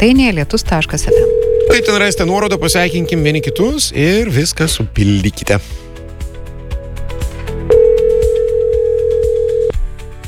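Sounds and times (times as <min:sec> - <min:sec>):
speech: 0:00.0 - 0:05.8
ringback tone on an outgoing phone call placed live on radio: 0:01.1 - 0:03.9, 0:07.7 - 0:09.7
regular thumping music beat: 0:01.2 - 0:03.9.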